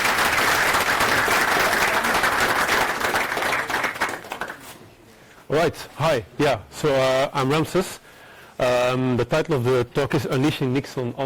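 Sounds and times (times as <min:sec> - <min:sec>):
audience applause in a room: 0:00.0 - 0:04.6
speech: 0:05.5 - 0:08.0, 0:08.6 - 0:11.2.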